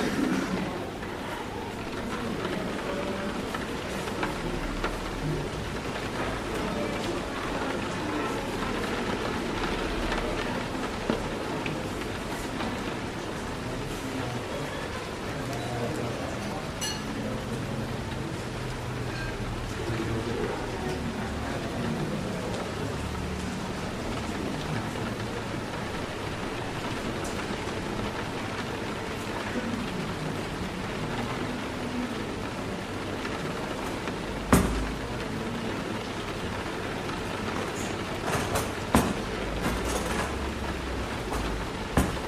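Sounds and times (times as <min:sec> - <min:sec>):
people chattering quietly in a cafe: 0:00.0 - 0:42.2
rain pattering on a window: 0:00.0 - 0:42.2.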